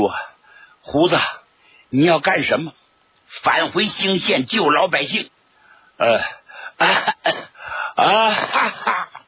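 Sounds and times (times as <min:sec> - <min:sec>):
speech: 0:00.0 - 0:00.2, 0:00.8 - 0:05.4, 0:06.0 - 0:07.4, 0:08.0 - 0:09.1
person acting out dry coughs of a man with a chronic cough: 0:06.6 - 0:09.2.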